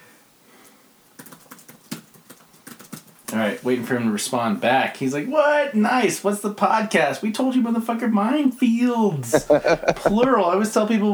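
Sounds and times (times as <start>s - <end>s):
rapid keystrokes typing a message: 1.2s - 3.4s
speech: 3.3s - 11.1s
laughter: 9.2s - 10.4s.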